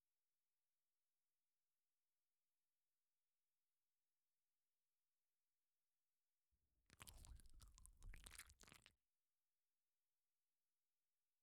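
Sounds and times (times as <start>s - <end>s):
ASMR ear licking in the right ear: 7.0s - 8.9s.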